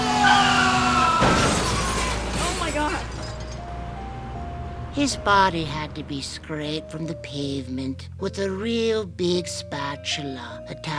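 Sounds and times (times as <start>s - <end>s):
big green bus tires screeching: 0.0s - 6.4s
loud crunching crash of bus hitting a man: 0.8s - 3.6s
rattling debris: 1.2s - 3.7s
speech: 5.0s - 10.9s.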